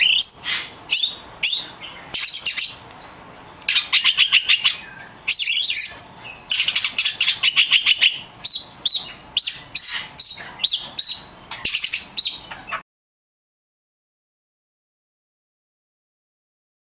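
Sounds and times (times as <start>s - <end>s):
Oriental magpie-robin song of kacer lutung cebu variety: 0.0s - 12.8s.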